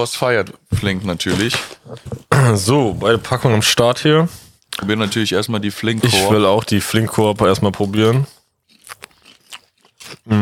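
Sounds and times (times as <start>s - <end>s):
speech: 0.0s - 9.0s, 10.3s - 10.4s
crunchy chewing of sugar-coated popcorn: 6.0s - 10.4s.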